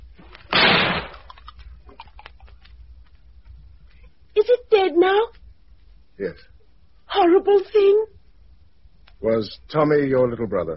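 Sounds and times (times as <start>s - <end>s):
gunshot fired at a creature in a garden: 0.5s - 1.3s
speech: 4.5s - 5.4s, 6.2s - 6.5s, 7.2s - 8.2s, 9.2s - 10.7s.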